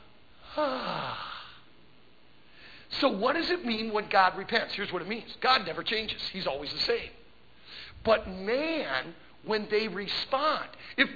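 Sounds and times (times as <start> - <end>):
voice imitating a snort through the nostrils: 0.5 - 1.6
speech: 3.0 - 7.2, 7.9 - 11.1.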